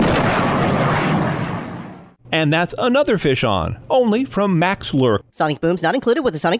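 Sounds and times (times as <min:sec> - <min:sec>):
loud sonic boom with roaring rumble: 0:00.0 - 0:02.2
speech: 0:02.4 - 0:06.5.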